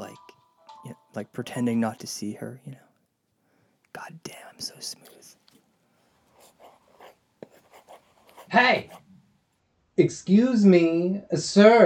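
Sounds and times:
speech: 1.2s - 2.8s, 8.5s - 9.0s, 10.0s - 11.8s
scratchy drawing strokes on a table: 6.4s - 9.0s.

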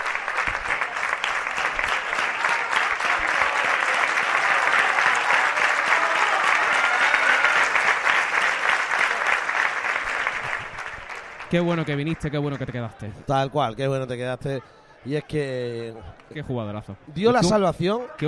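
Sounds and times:
large football stadium crowd applauding and cheering for a goal scorer: 0.0s - 13.1s
speech: 11.5s - 18.2s.

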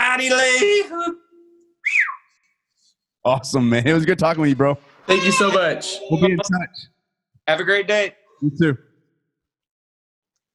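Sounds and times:
speech: 0.2s - 1.2s, 3.2s - 6.9s, 7.5s - 8.9s
person whistling: 1.5s - 2.4s.

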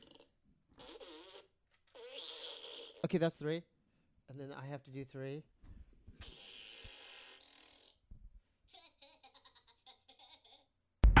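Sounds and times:
loud fart noises blown with the mouth: 0.0s - 3.1s, 6.2s - 8.0s
speech: 3.0s - 3.7s, 4.3s - 5.6s.

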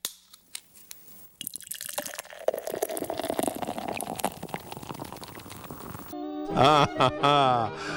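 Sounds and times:
beer pouring into a glass: 1.2s - 6.2s
laughter: 6.5s - 7.9s.

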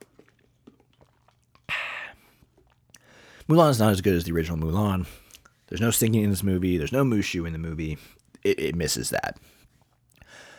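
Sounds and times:
loud slurping sip of a drink: 0.0s - 3.5s
soft mouth clicks: 1.6s - 3.5s
speech: 3.5s - 9.6s.

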